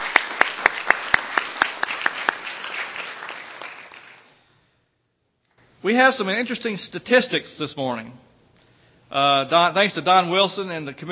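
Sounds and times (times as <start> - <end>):
audience applause: 0.0 - 4.3
sharp evenly spaced claps: 0.0 - 4.3
speech: 5.8 - 8.3, 9.1 - 11.1.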